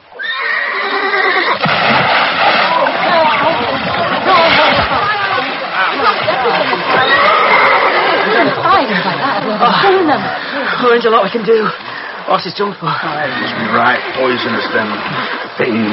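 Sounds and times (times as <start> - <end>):
horse whinnying loudly: 0.2 - 1.6, 7.0 - 8.4
laughter: 2.7 - 10.9
speech: 10.1 - 15.9.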